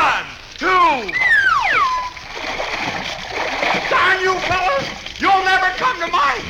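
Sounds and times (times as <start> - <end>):
water splashing as people are thrown into a swimming pool: 0.0 - 6.4
brief high falling tone: 1.0 - 2.3.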